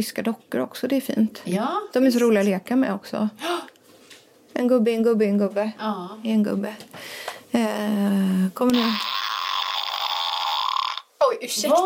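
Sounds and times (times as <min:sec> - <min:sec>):
speech: 0:00.0 - 0:03.7, 0:04.6 - 0:09.1, 0:11.4 - 0:11.8
steady buzzing fart: 0:08.7 - 0:11.1.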